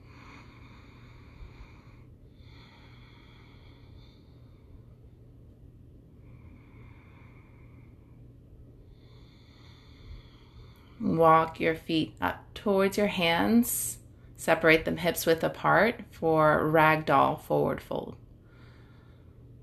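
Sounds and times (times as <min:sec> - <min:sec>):
slow deep ujjayi yoga breaths through the nose with throat constriction: 0:00.0 - 0:05.0, 0:06.2 - 0:11.1, 0:18.4 - 0:19.6
faint steady hum: 0:00.0 - 0:19.6
speech: 0:11.1 - 0:18.2.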